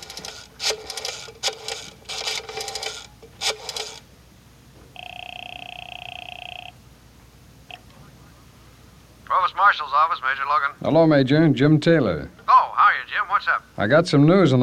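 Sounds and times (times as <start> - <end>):
steady telephone ringing tone: 0.0 - 4.0, 4.9 - 6.8, 7.7 - 7.9
telephone dial clicking and ratcheting bursts: 0.0 - 4.0
speech: 9.7 - 12.4, 13.4 - 14.6.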